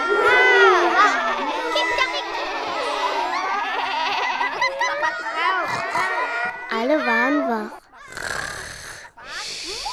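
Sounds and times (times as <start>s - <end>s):
laughter: 0.0s - 9.9s
person imitating a dog snoring while asleep: 7.1s - 9.9s.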